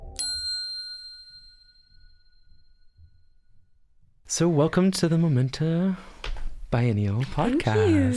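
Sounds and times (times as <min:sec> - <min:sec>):
bright bell ding: 0:00.1 - 0:03.6
speech: 0:04.3 - 0:06.1, 0:06.7 - 0:08.1.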